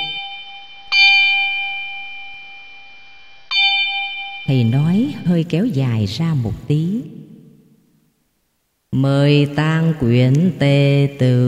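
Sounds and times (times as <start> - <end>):
Buddhist temple bell struck during a funeral rite: 0.0 - 5.3
speech: 4.5 - 7.1, 8.9 - 11.4.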